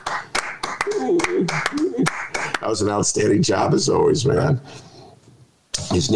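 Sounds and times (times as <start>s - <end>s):
hand claps: 0.0s - 2.7s
speech: 0.9s - 4.9s, 5.9s - 6.1s.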